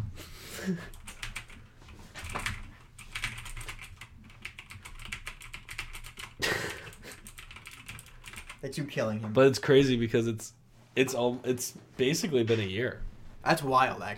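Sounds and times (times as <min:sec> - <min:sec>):
speech: 0:00.7 - 0:01.0, 0:08.6 - 0:14.1
computer keyboard keys clattering during gameplay: 0:02.2 - 0:06.4, 0:07.2 - 0:08.6.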